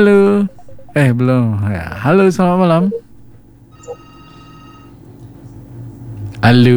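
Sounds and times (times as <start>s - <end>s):
speech: 0.0s - 3.0s, 6.4s - 6.7s
telephone ringing as a radio caller comes on air: 0.0s - 5.1s.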